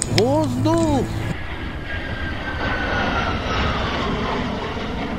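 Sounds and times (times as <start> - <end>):
speech: 0.2 - 1.3
fighter jets roaring past: 1.1 - 5.1.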